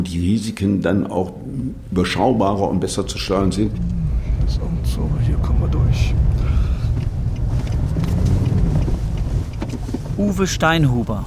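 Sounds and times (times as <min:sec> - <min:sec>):
speech: 0:00.0 - 0:03.9, 0:04.5 - 0:06.7, 0:10.2 - 0:11.2
off-road vehicle driving through a reclaimed open-cast mine: 0:01.4 - 0:11.2
buffeting wind noise: 0:03.0 - 0:11.2.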